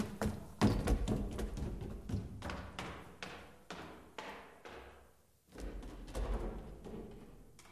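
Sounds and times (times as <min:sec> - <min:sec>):
distant footsteps climbing a staircase: 0:00.0 - 0:07.7.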